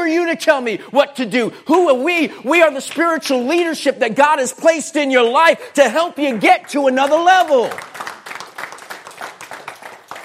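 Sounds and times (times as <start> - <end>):
speech: 0.3 - 8.1
small audience clapping sporadically: 6.1 - 10.2.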